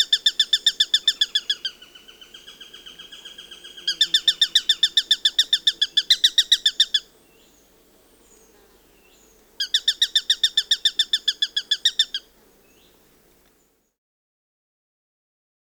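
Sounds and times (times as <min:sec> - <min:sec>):
Eurasian sparrowhawk repeating a strident kek series: 0:00.0 - 0:07.1, 0:09.6 - 0:12.9.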